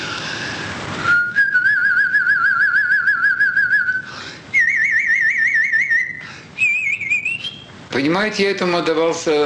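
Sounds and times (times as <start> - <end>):
short breaths: 0.0 - 0.9, 4.0 - 4.6, 6.2 - 6.6
person whistling a warbling trill: 1.0 - 7.7
speech: 8.0 - 9.4.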